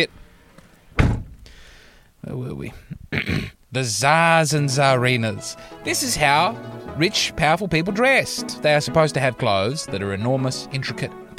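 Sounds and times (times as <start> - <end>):
speech: 0.0 - 0.2, 2.2 - 11.3
soundproofing door shutting with a solid thud: 1.0 - 1.4.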